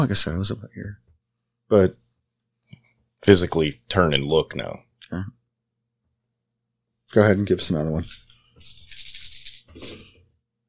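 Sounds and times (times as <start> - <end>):
speech: 0.0 - 1.0, 1.7 - 2.0, 3.2 - 5.4, 7.1 - 8.8
dice rattling: 7.9 - 10.1.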